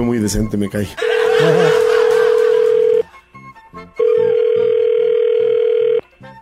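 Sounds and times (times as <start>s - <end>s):
speech: 0.0s - 1.9s
laughter: 1.0s - 3.1s
long loud even telephone tones while calling someone: 2.7s - 3.0s, 4.0s - 6.1s.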